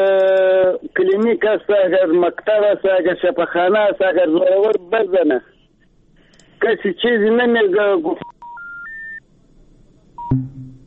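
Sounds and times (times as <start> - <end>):
speech: 1.1 - 5.6, 6.6 - 8.3
low telephone line hum: 10.2 - 10.8
short telephone line beep after a dropped call: 10.2 - 10.8
three steady electronic telephone notes stepping upward in pitch: 10.2 - 10.8.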